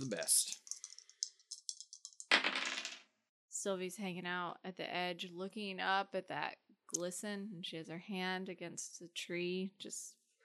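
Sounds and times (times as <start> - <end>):
speech: 0.0 - 0.6, 3.6 - 10.2
two dice rattling and clattering: 0.5 - 3.0.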